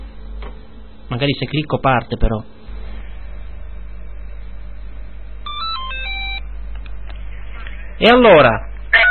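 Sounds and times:
steady low hum: 0:00.0 - 0:08.0
speech: 0:01.1 - 0:02.6, 0:08.0 - 0:08.7
telephone ringing with bright electronic tones: 0:05.4 - 0:06.4.

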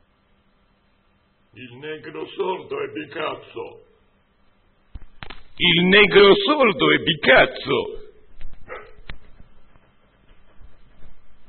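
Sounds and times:
speech: 0:01.6 - 0:03.9, 0:05.6 - 0:08.0
snapping sound: 0:05.0 - 0:05.6
dog barking: 0:08.6 - 0:09.2.

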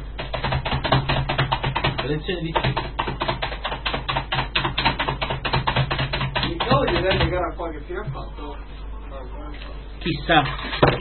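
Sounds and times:
computer keyboard typing: 0:00.2 - 0:07.4
speech: 0:02.0 - 0:02.9, 0:06.7 - 0:11.0.

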